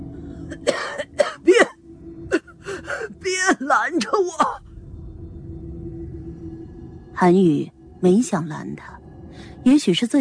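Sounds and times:
speech: 0.5 - 1.0, 7.2 - 9.0, 9.6 - 10.2
person coughing harshly after choking on seawater: 0.5 - 2.5, 4.0 - 4.6.

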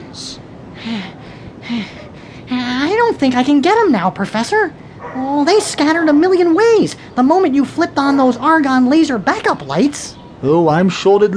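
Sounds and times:
speech: 0.2 - 2.0, 3.2 - 11.3
heavy rasping breaths: 0.7 - 2.5.

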